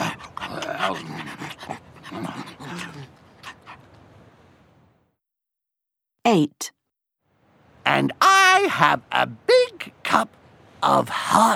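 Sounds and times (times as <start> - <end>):
hungry sled dogs panting: 0.0 - 4.0
speech: 0.8 - 2.4, 6.4 - 6.8, 8.0 - 11.5.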